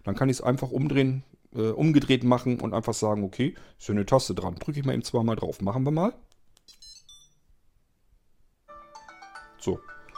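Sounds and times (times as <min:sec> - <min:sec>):
speech: 0:00.0 - 0:06.8, 0:09.6 - 0:10.0
electronic chirps: 0:06.7 - 0:07.4
smartphone ringtone triggered remotely: 0:06.7 - 0:07.4, 0:08.7 - 0:10.1.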